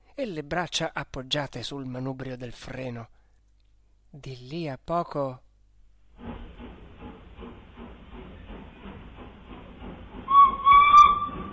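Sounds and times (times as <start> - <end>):
speech: 0.2 - 3.2, 4.1 - 5.4
steam locomotive chuffing as it departs: 6.1 - 11.5
steam locomotive shrill whistle: 10.3 - 11.5.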